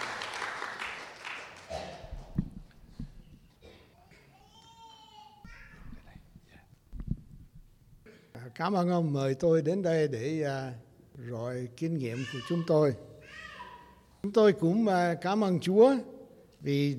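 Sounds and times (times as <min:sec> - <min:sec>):
audience applause for a pastor: 0:00.0 - 0:01.8
speech: 0:08.6 - 0:13.1, 0:14.2 - 0:16.9.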